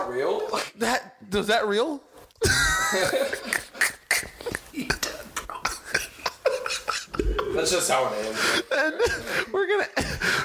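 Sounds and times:
speech: 0:00.1 - 0:04.0, 0:07.6 - 0:10.4
laughter: 0:02.4 - 0:05.1, 0:06.0 - 0:10.4
harsh hacking cough: 0:02.4 - 0:07.6, 0:09.0 - 0:10.4.

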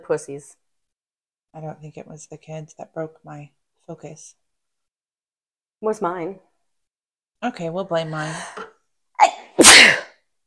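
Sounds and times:
speech: 0:00.0 - 0:00.6, 0:01.5 - 0:04.4, 0:05.8 - 0:06.5, 0:07.4 - 0:08.6
person sneezing: 0:09.2 - 0:10.2.

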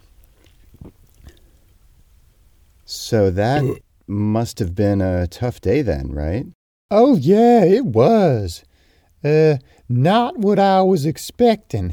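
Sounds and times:
speech: 0:03.1 - 0:11.9
person sipping beer: 0:03.6 - 0:03.8.

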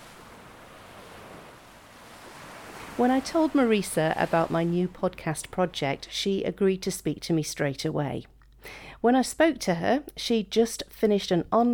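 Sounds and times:
Mediterranean waves lapping on the beach at Catalan Bay in Gibraltar: 0:00.0 - 0:06.0
soft wind on the beach: 0:00.0 - 0:06.8
speech: 0:03.0 - 0:11.7.

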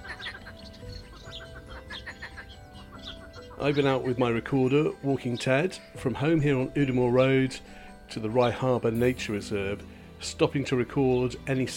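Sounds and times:
marsh frogs calling in a chorus at the bottom of Cadborough Cliffs: 0:00.0 - 0:06.0
speech: 0:03.6 - 0:11.7.

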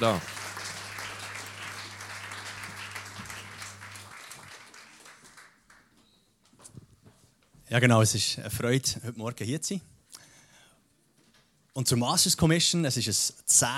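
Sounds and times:
speech: 0:00.0 - 0:00.3, 0:07.7 - 0:09.9, 0:11.8 - 0:13.7
audience applauding to welcome speakers: 0:00.0 - 0:06.1.

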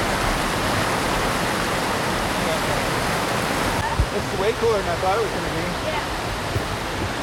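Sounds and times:
large waterfall roaring: 0:00.0 - 0:07.2
speech: 0:04.2 - 0:05.7.

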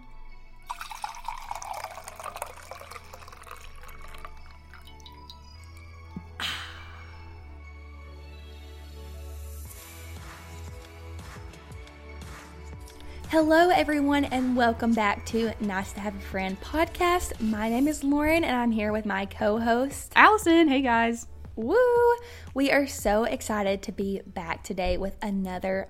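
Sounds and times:
coffee pouring into a coffee cup: 0:00.6 - 0:06.0
soft drips and trickles of coffee: 0:00.7 - 0:06.3
speech: 0:13.3 - 0:25.8.

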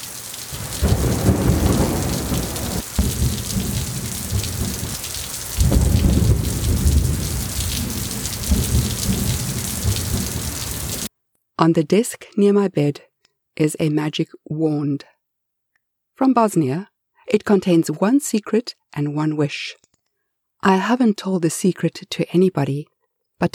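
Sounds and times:
deep rolling thunder: 0:00.0 - 0:11.1
heavy rain pouring in a thunderstorm: 0:00.0 - 0:11.1
speech: 0:11.6 - 0:15.1, 0:16.2 - 0:19.8, 0:20.6 - 0:23.5.

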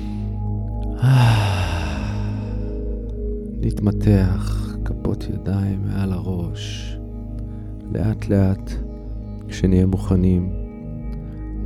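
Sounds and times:
deep breath in and out during a guided self-compassion meditation: 0:00.0 - 0:03.4, 0:07.2 - 0:07.8
steady low musical drone: 0:00.0 - 0:11.6
speech: 0:01.0 - 0:01.2, 0:03.7 - 0:07.0, 0:07.9 - 0:08.8, 0:09.5 - 0:10.6.

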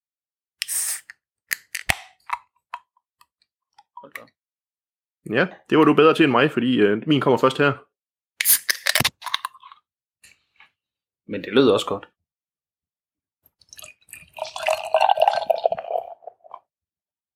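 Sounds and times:
beer can being cracked open: 0:00.6 - 0:02.4, 0:08.4 - 0:09.5
speech: 0:04.0 - 0:04.4, 0:05.2 - 0:07.9, 0:11.3 - 0:12.2
beer can tab clicks and taps: 0:08.4 - 0:09.4
porter beer splashes and drips: 0:13.6 - 0:14.9
top-fermented porter beer pouring into a glass: 0:13.7 - 0:16.5.

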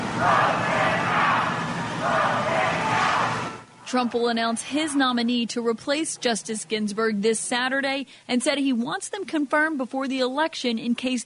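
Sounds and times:
large outdoor crowd booing and shouting at the Supreme Court: 0:00.0 - 0:05.2
speech: 0:00.2 - 0:00.5, 0:03.9 - 0:11.2.

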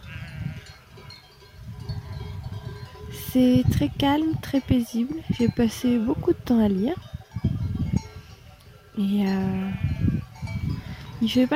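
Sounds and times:
faint sheep bleat: 0:00.0 - 0:00.8, 0:09.5 - 0:10.2
metal bells of grazing ewes clanking: 0:00.0 - 0:11.5
speech: 0:03.3 - 0:07.1, 0:09.0 - 0:09.9, 0:11.2 - 0:11.5.

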